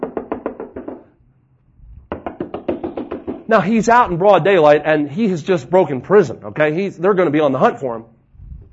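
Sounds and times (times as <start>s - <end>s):
rapid firm knocking on a door: 0.0s - 1.1s, 2.1s - 3.5s
speech: 3.5s - 8.1s.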